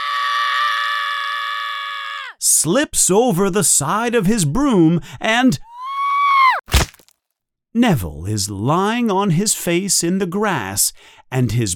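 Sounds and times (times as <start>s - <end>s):
boy screaming in fear: 0.0s - 2.4s, 5.6s - 6.7s
speech: 2.6s - 5.7s, 7.7s - 11.7s.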